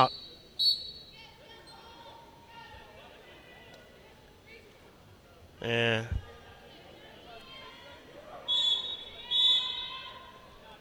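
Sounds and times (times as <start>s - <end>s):
speech: 0.0s - 0.2s, 5.6s - 6.2s
referee whistle blasts in a basketball arena: 0.0s - 1.2s, 8.5s - 10.0s
murmur of an arena crowd: 0.0s - 10.7s.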